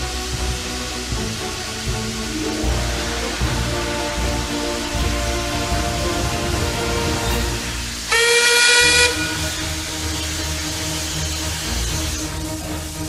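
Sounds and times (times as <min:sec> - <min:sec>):
hissing steam from locomotive: 0:00.0 - 0:13.0
express train steam locomotive whistle: 0:02.3 - 0:12.2.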